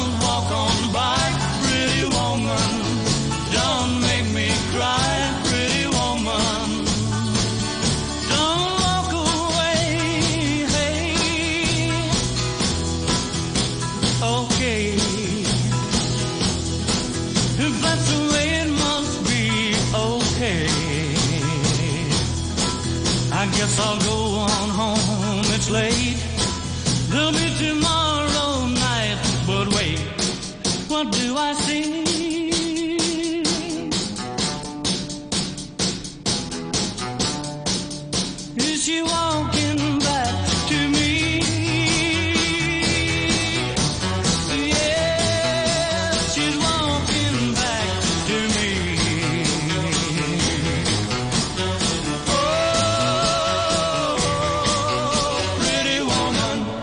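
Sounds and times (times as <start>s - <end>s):
male singer's melodic vocal lines: 0.0s - 12.7s, 14.0s - 16.0s, 17.3s - 22.4s, 23.2s - 34.2s, 38.5s - 51.1s, 52.1s - 56.8s
1960s rock and roll song: 0.0s - 56.8s
drums with a driving beat: 0.0s - 56.8s.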